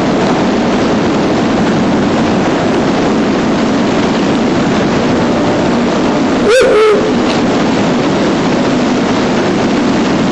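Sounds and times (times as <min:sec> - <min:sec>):
steady heavy rushing noise: 0:00.0 - 0:10.3
male Ural owl hooting in a forest: 0:06.4 - 0:07.4.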